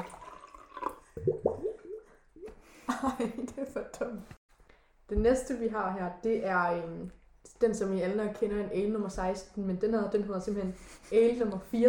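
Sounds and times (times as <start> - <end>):
fish-shaped water jug gurgling as water is poured: 0.0 - 2.5
speech: 3.0 - 4.4, 5.1 - 11.8.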